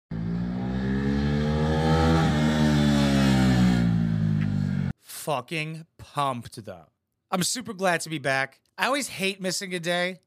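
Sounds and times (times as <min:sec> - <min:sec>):
motorcycle engine revving: 0:00.1 - 0:04.9
speech: 0:05.3 - 0:10.2.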